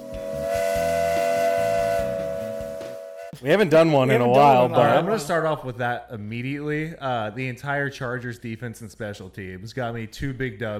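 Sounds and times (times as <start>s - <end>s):
steam lunch whistle blowing: 0.0s - 3.4s
speech: 3.4s - 10.7s.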